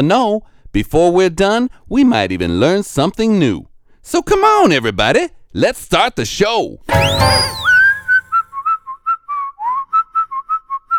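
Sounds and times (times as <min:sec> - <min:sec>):
speech: 0:00.0 - 0:07.7
person whistling a cheerful tune: 0:06.9 - 0:10.9.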